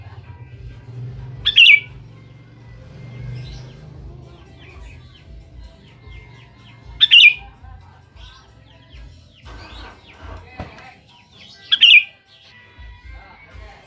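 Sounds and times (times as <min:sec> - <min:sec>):
sooty-headed bulbul song: 0:00.0 - 0:13.8
faint soft bird chirps: 0:01.2 - 0:10.4, 0:11.1 - 0:12.6.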